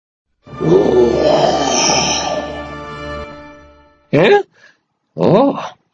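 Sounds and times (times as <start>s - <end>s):
lion deep rumbling roar: 0.5s - 2.9s
speech: 4.1s - 4.5s, 5.2s - 5.8s.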